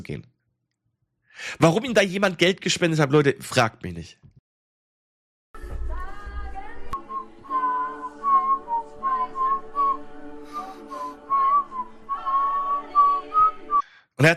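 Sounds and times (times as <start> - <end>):
speech: 0.0 - 0.3, 1.4 - 4.3, 14.2 - 14.3
person whistling a wavering tune: 7.0 - 13.9.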